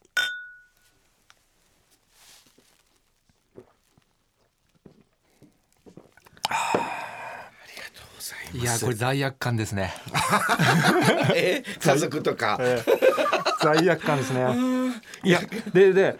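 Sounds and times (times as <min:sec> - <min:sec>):
glasses of Yebisu Premium White beer clinking in a toast: 0:00.0 - 0:01.0
quiet sipping: 0:00.0 - 0:08.6
soft rustles: 0:00.7 - 0:06.4
loud breathy sounds: 0:06.4 - 0:07.7
speech: 0:08.6 - 0:16.1
laughter: 0:10.0 - 0:16.1.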